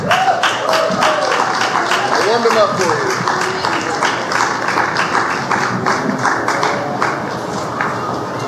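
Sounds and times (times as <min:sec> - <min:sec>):
person cheering or whooping: 0:00.0 - 0:01.6
audience applause: 0:00.0 - 0:08.3
speech: 0:02.4 - 0:03.1.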